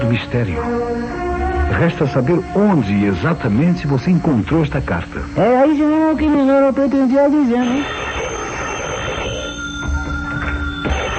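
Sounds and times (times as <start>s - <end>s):
speech: 0.1s - 8.0s
telephone ringing with a steady electronic tone: 2.8s - 11.1s.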